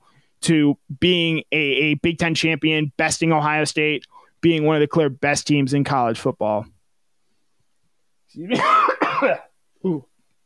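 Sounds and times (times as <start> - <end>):
speech: 0.4 - 6.7, 8.3 - 10.1
harsh throat-clearing cough: 8.5 - 10.1.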